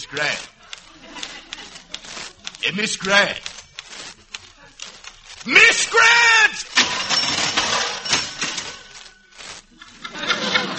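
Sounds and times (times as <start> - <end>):
speech: 0.0 - 1.2, 2.6 - 3.5, 5.4 - 6.7
laughter: 0.0 - 3.3, 9.6 - 10.7
typewriter crashing to the floor with metallic clattering and rattling: 6.7 - 9.1.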